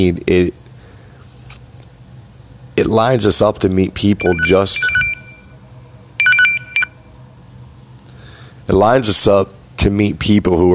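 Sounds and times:
speech: 0:00.0 - 0:00.6, 0:02.8 - 0:05.0, 0:08.7 - 0:10.7
phone ringing with electronic tone bursts: 0:04.2 - 0:05.6, 0:06.2 - 0:07.0
short final beep: 0:04.2 - 0:05.6.

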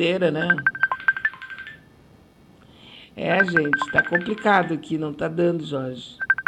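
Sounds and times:
speech: 0:00.0 - 0:00.7, 0:03.2 - 0:06.3
electronic telephone tones from a call being dialled: 0:00.4 - 0:01.8, 0:03.4 - 0:04.7, 0:06.2 - 0:06.4.

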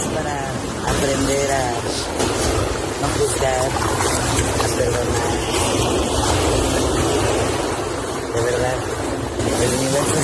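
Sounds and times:
ocean waves washing onto the shore: 0:00.0 - 0:10.2
wind rumble: 0:00.0 - 0:10.2
speech: 0:03.0 - 0:05.7, 0:09.5 - 0:10.2.

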